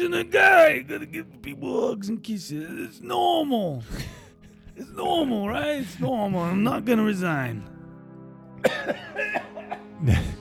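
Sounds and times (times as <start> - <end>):
speech: 0.0 - 4.2, 4.8 - 7.7, 8.6 - 9.4, 10.0 - 10.3
raspy phlegmy smoker's cough: 8.6 - 10.4.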